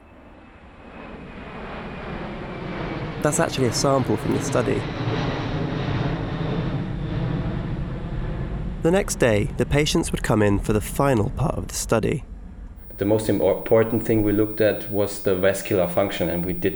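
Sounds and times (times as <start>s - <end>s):
jet airplane flying overhead: 0.2s - 8.8s, 12.8s - 16.7s
speech: 3.2s - 5.3s, 8.8s - 12.3s, 13.0s - 16.7s.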